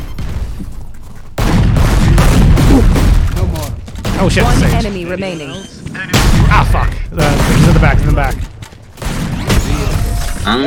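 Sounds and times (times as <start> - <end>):
gunfire in a video game shooter: 1.4 - 5.2, 6.1 - 10.5
speech: 4.2 - 8.5, 10.4 - 10.6.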